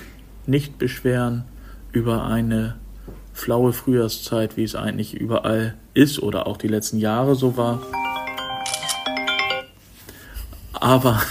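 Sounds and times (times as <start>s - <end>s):
faint room noise: 0.0s - 11.3s
speech: 0.5s - 2.8s, 3.4s - 8.0s, 10.8s - 11.3s
telephone ringing with melodic electronic tone: 7.6s - 9.8s.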